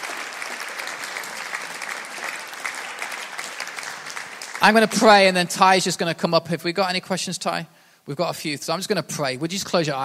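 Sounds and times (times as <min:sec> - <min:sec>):
audience applause: 0:00.0 - 0:05.4
speech: 0:04.6 - 0:10.0.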